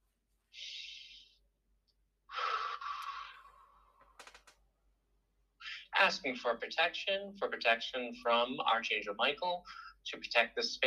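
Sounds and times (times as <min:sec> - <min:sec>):
deep breath drawn to settle into a trance: 0:02.3 - 0:04.0, 0:05.6 - 0:05.9, 0:09.6 - 0:10.0
speech: 0:06.0 - 0:10.8.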